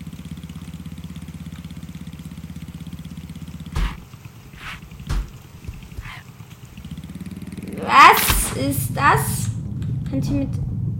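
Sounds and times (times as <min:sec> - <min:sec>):
motorcycle engine passing by: 0:00.0 - 0:10.9
soft thumps: 0:03.8 - 0:06.3
speech: 0:08.6 - 0:09.4, 0:10.1 - 0:10.7.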